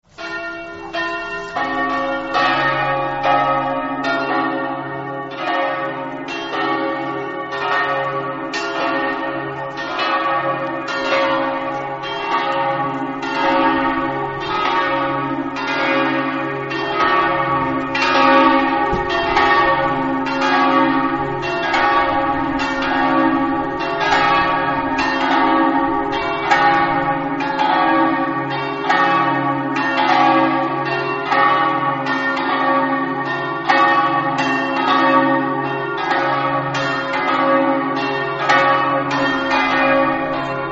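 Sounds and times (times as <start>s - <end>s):
church bells ringing in Pontebba: 0.0s - 40.6s.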